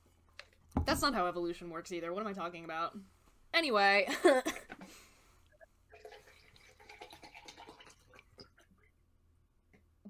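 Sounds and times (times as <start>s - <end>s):
speech: 0.8s - 5.0s
water sloshing inside a water bottle: 5.5s - 8.9s.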